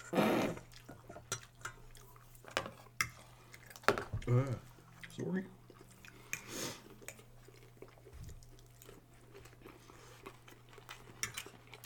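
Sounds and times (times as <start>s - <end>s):
chewing crunchy unbreaded Kung Pao chicken with vegetables: 0.0s - 11.8s
speech: 4.3s - 5.6s.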